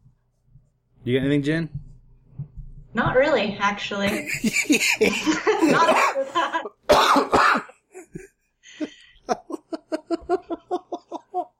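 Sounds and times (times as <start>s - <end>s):
speech: 1.0s - 1.8s, 2.9s - 7.4s
rhythmic breathy laughter: 4.1s - 6.7s, 7.8s - 11.5s
person with an ongoing cough coughing harshly: 4.8s - 8.4s.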